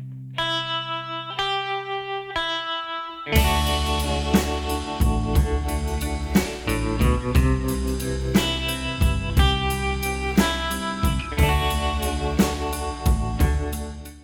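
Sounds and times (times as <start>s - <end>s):
bright plucked melody line: 0.4s - 14.2s
full band playing with drums: 3.4s - 14.2s
steady bass: 3.4s - 14.2s.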